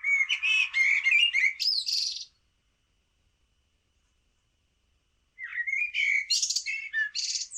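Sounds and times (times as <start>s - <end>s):
common blackbird singing: 0.0s - 2.4s, 5.4s - 7.5s.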